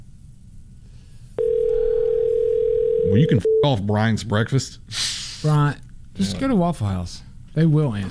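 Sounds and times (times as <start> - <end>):
phone line ringing tone for an unanswered call: 1.4 - 3.7
speech: 3.1 - 8.0.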